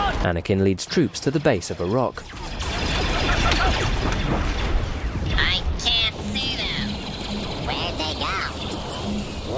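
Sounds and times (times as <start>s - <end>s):
speech: 0.2s - 2.8s
tank-like walkers firing descending blaster zaps at a rock pinnacle: 2.2s - 9.4s.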